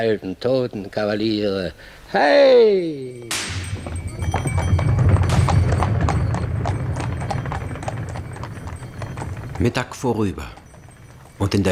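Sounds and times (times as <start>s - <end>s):
speech: 0.0s - 4.4s, 9.6s - 10.6s, 11.4s - 11.6s
horse hooves clip-clopping: 3.2s - 11.6s
low rumbling background: 3.6s - 11.6s.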